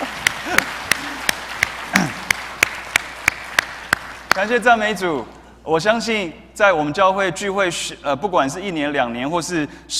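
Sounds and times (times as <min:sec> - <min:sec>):
crowd clapping in a steady even rhythm: 0:00.0 - 0:05.2
speech: 0:00.5 - 0:00.8, 0:04.4 - 0:09.9.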